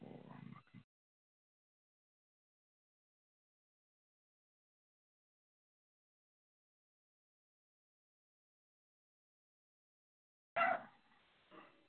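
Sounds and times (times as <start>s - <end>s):
dog barking: 10.6s - 11.7s.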